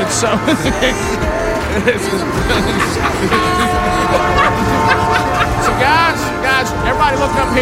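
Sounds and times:
laughter: 0.0 - 7.6
murmur of people's voices: 0.0 - 7.6
speech: 0.2 - 5.0, 5.8 - 7.6
train horn blaring: 1.0 - 7.6
train rumbling past: 2.3 - 7.6.

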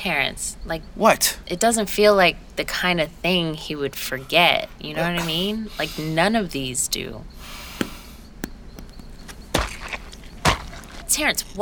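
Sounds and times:
speech: 0.0 - 7.4, 11.1 - 11.6
stomping on apples: 7.6 - 11.1.

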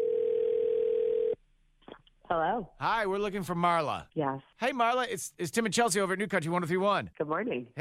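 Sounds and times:
telephone dial tone of an outgoing call: 0.0 - 1.4
speech: 2.3 - 7.7.

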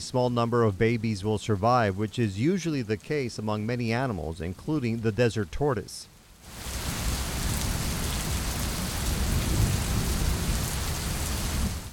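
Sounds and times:
speech: 0.0 - 6.8
heavy summer rain hissing across surfaces: 0.0 - 11.9
deep rumble of thunder: 6.5 - 11.9.

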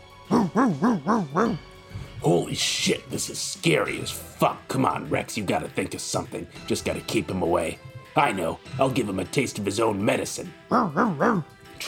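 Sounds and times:
pit bull barking while circling: 0.3 - 1.6, 10.7 - 11.5
speech: 0.6 - 11.8.

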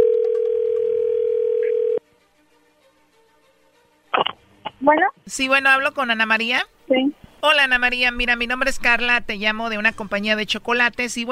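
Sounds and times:
telephone ringing on an outgoing call: 0.0 - 2.0
speech: 4.9 - 11.3.

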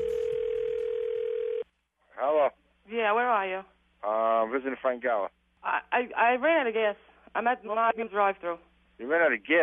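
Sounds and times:
telephone dial tone: 0.0 - 1.6
speech: 3.0 - 9.6.

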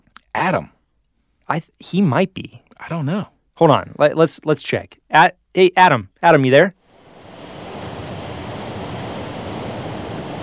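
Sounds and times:
speech: 0.4 - 0.8, 1.5 - 6.8
steady rushing roar: 6.8 - 10.4.

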